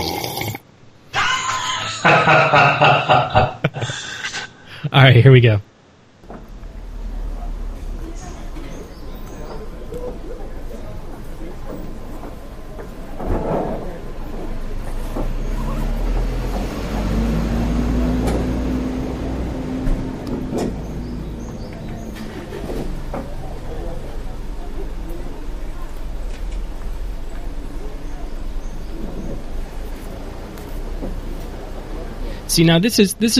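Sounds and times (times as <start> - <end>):
laughter: 1.1 - 4.7, 22.0 - 23.0
speech: 2.0 - 4.0, 4.8 - 5.7, 32.6 - 33.3
vehicle rumbling past: 6.2 - 32.6
murmured chatter from people at an outdoor cafe: 6.3 - 32.6.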